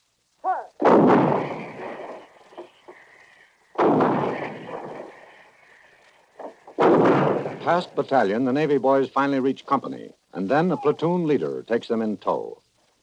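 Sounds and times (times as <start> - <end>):
smaller pops and thuds: 0.8 - 3.0, 3.8 - 5.4, 6.3 - 7.8
heavy 155 guns shelling enemy installations: 0.8 - 8.4
speech: 7.6 - 12.6.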